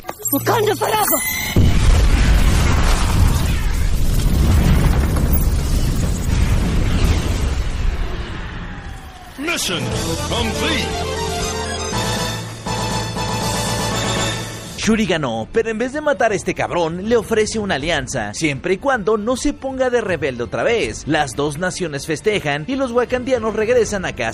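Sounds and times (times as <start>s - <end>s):
speech: 0.3s - 1.7s, 9.6s - 11.2s, 14.9s - 24.3s
loud booming explosion in a film scene: 1.4s - 9.3s
dramatic film music: 9.4s - 15.1s.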